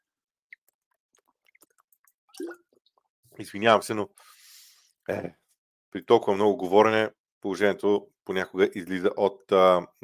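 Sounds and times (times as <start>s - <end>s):
person sipping water: 0.7s - 3.1s
speech: 2.4s - 4.4s, 5.1s - 10.0s.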